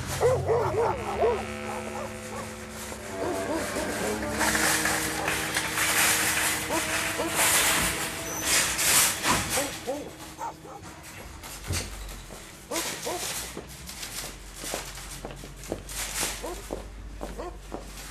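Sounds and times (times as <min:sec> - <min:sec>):
tied-up dogs barking outside a supermarket: 0:00.1 - 0:11.0, 0:12.6 - 0:13.4, 0:16.4 - 0:17.7.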